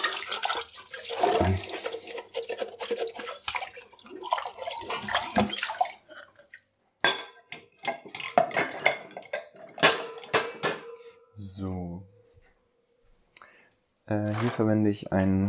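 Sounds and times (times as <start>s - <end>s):
splashing and dripping running water: 0.0s - 6.8s
speech: 1.4s - 1.7s, 5.4s - 5.7s, 14.1s - 15.4s
glass, lid and crockery clattering and clinking while washed by hand: 7.0s - 11.2s.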